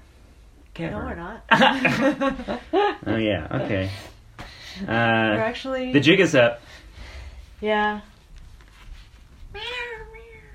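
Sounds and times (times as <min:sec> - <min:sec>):
speech: 0:00.8 - 0:04.1, 0:04.7 - 0:06.8, 0:07.6 - 0:08.1
female cat meowing: 0:09.5 - 0:10.5.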